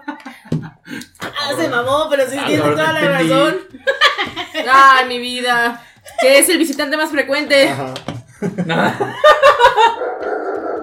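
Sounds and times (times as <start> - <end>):
speech: 0.6 - 3.7, 4.6 - 10.1
laughter: 2.5 - 5.1, 8.3 - 10.2
dog barking and yelping: 9.7 - 10.8.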